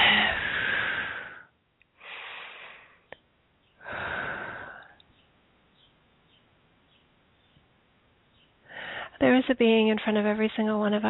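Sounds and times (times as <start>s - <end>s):
deep breaths in through the nose and out through the mouth: 0.0s - 3.2s, 3.8s - 5.1s, 8.6s - 9.2s
speech: 9.4s - 11.0s.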